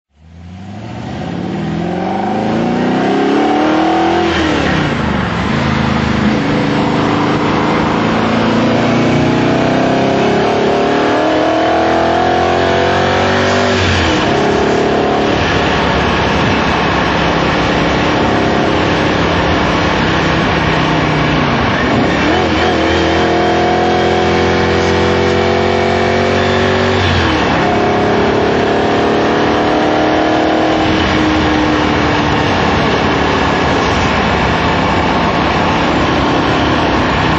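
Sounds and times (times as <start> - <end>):
Morgan Plus 8 car engine while driving: 0.1 - 37.3.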